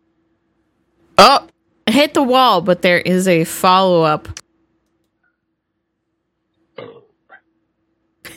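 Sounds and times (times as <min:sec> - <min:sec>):
speech: 0:01.2 - 0:04.4
throaty burp: 0:06.8 - 0:07.2.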